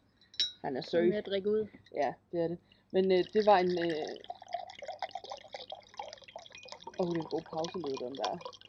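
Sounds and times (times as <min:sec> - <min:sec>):
speech: 0:00.6 - 0:04.3, 0:07.0 - 0:08.6
cold water pouring into a glass: 0:03.0 - 0:08.6.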